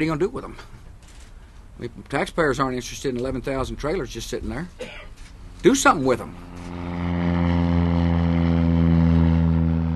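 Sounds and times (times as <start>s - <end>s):
speech: 0.0s - 0.8s, 1.8s - 7.0s
propeller airplane droning: 0.0s - 9.9s.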